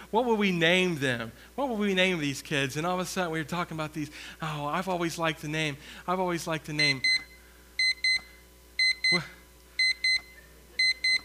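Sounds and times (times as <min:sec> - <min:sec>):
speech: 0:00.1 - 0:07.3, 0:09.1 - 0:09.4
alarm clock beeping: 0:06.8 - 0:09.2, 0:09.8 - 0:11.2.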